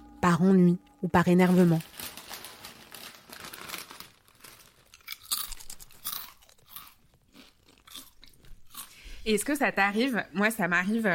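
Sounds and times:
speech: 0.2s - 1.9s, 9.3s - 11.1s
bag crinkling: 1.4s - 8.8s
crisp crunching of chips being chewed: 2.1s - 9.0s.

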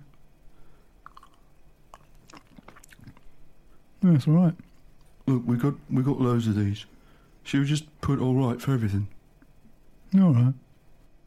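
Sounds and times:
person sipping wine: 1.0s - 3.3s
slurping: 1.0s - 3.3s
wet mouth clicks: 1.0s - 3.3s
speech: 4.1s - 4.6s, 5.3s - 9.2s, 10.1s - 10.6s.

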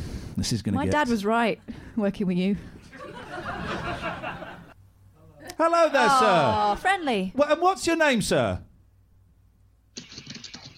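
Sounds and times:
speech: 0.4s - 4.2s, 5.6s - 8.7s
laughter: 2.9s - 4.8s
computer keyboard typing: 10.0s - 10.7s.

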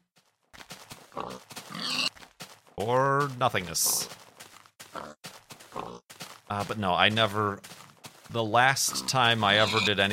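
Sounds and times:
speech: 1.2s - 2.0s, 2.8s - 4.2s, 6.5s - 7.7s, 8.3s - 10.1s
pig toy oinking with grunting, snorting squeals: 8.9s - 10.0s.

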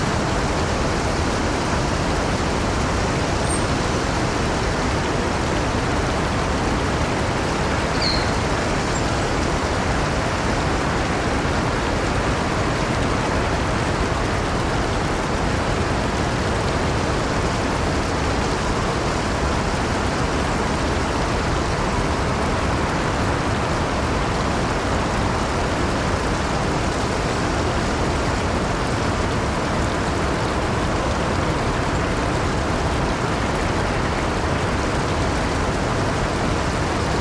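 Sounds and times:
rural stream flowing through a garden: 0.0s - 37.1s
faint high bird chirps: 3.4s - 3.8s, 7.9s - 9.2s.

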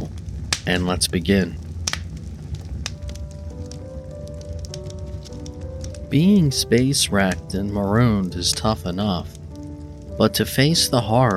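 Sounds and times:
fireplace crackling with sharp pops: 0.0s - 11.3s
low soft rumble: 0.0s - 11.3s
quiet sustained music tones: 0.0s - 11.3s
speech: 0.7s - 1.6s, 6.1s - 9.4s, 10.2s - 11.3s.

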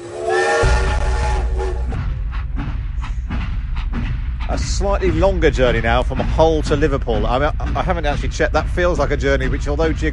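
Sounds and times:
steam train whistle blowing: 0.0s - 2.0s
steam locomotive chuffing: 0.0s - 10.1s
locomotive clattering along the tracks: 0.8s - 10.1s
speech: 4.7s - 10.1s.

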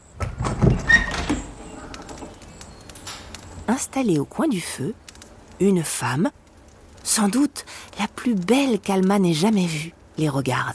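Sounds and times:
wooden door of a thatched-roof house creaking open: 0.2s - 2.4s
speech: 3.7s - 5.0s, 5.6s - 6.4s, 7.0s - 10.7s.

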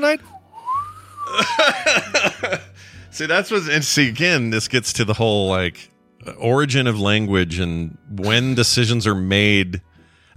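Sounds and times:
speech: 0.0s - 0.3s, 1.3s - 10.3s
person whistling a gliding note as a question mark: 0.2s - 1.4s
laughter: 1.3s - 2.8s.

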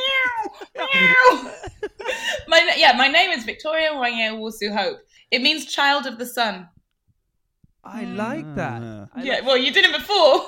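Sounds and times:
person imitating a cat meow: 0.0s - 1.4s, 7.9s - 9.2s
speech: 2.5s - 6.8s, 7.8s - 10.4s.

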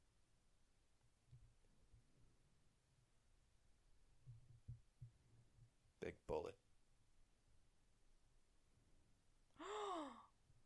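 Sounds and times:
speech: 6.0s - 6.6s
person gasping loudly: 9.6s - 10.3s.

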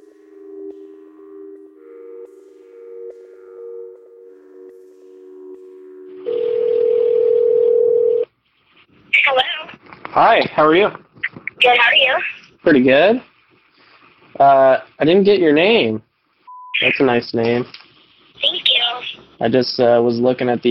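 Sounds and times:
electronic telephone ringing tone on the line: 6.2s - 8.3s
speech: 10.2s - 13.3s, 14.4s - 16.1s, 16.8s - 17.8s, 19.4s - 20.6s.

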